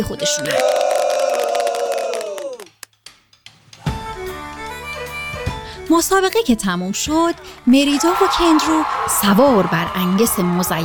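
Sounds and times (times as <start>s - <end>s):
speech: 0.0s - 1.0s, 5.9s - 10.8s
crowd at a competition roaring, cheering and shouting: 0.3s - 2.7s, 7.9s - 10.8s.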